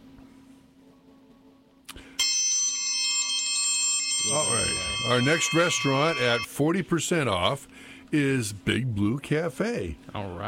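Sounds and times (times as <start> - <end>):
metal triangle ringing: 4.1 - 6.5
speech: 4.4 - 10.4.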